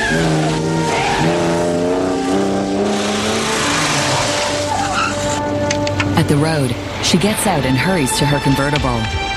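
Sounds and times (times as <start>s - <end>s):
car tires squealing against the pavement: 0.0s - 5.7s
car engine roaring while accelerating hard: 0.0s - 6.8s
speech: 6.3s - 9.2s.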